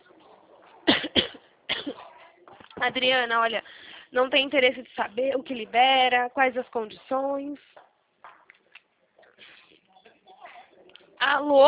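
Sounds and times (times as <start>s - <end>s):
person coughing after choking while breathing during a phone call: 0.9s - 2.2s
speech: 2.8s - 7.8s, 11.3s - 11.6s.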